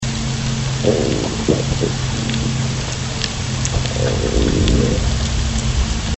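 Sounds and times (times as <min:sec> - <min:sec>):
minke whale pulse train calls: 0:00.6 - 0:05.6.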